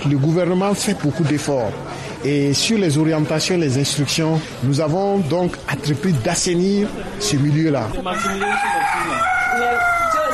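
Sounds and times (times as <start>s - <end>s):
speech: 0.0s - 10.2s
rooster crowing in a chicken coop in Tenkodogo: 8.1s - 10.3s.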